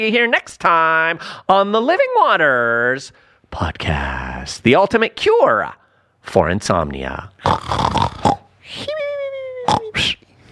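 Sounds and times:
speech: 0.0 - 9.0
person imitating snoring in a snoring competition: 7.4 - 8.5, 9.6 - 10.2.

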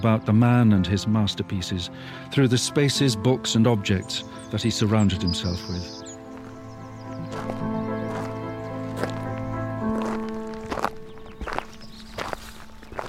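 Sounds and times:
speech: 0.0 - 6.1
soft sustained musical backing: 0.0 - 13.0
footsteps walking down a lane: 6.0 - 13.0.

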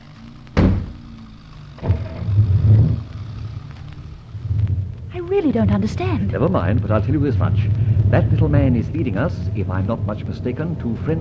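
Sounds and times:
car engine rumbling as the car pulls away: 0.0 - 11.1
car doors slamming: 0.5 - 1.1, 1.8 - 2.4
speech: 5.3 - 11.1.

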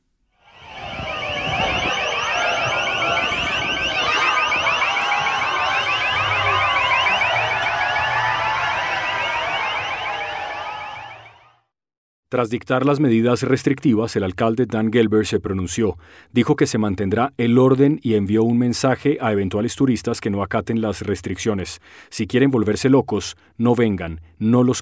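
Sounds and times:
rapidly warbling police siren during street clashes: 0.4 - 11.6
speech: 12.3 - 24.7.

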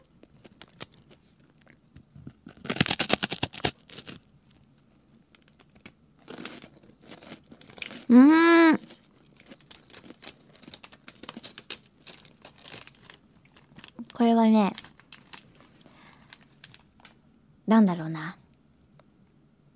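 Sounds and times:
person biting into crunchy food: 0.0 - 17.1
speech: 8.1 - 8.4, 14.5 - 14.8, 17.7 - 18.4
brief hummed vocal sounds: 8.1 - 8.8.

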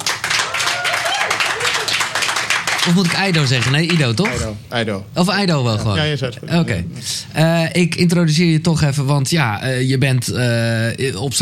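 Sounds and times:
small group clapping: 0.0 - 4.6
speech: 2.8 - 11.4.

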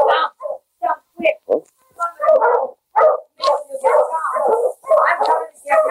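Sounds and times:
sled dog team barking and yipping on a riverside trail near Selkirk: 0.0 - 0.7, 2.0 - 5.8
steady high hiss: 0.0 - 5.8.

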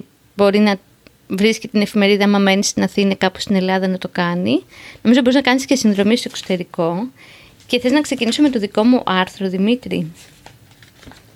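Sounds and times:
speech: 0.0 - 10.3
magazine paper pages rustling and crinkling: 5.8 - 6.8, 7.6 - 9.1, 10.0 - 11.3
magazine pages flicking as they turn: 5.9 - 6.6, 7.6 - 8.7, 10.2 - 11.3.

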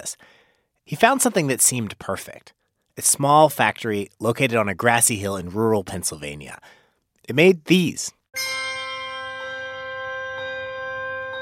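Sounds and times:
speech: 0.1 - 8.7
handbells ringing: 8.4 - 11.4.

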